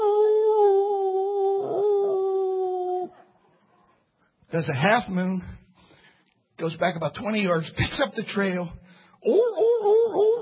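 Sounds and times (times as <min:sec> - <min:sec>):
person imitating a hunting dog's howl: 0:00.0 - 0:03.2, 0:09.2 - 0:10.3
speech: 0:04.5 - 0:05.6, 0:06.6 - 0:09.8.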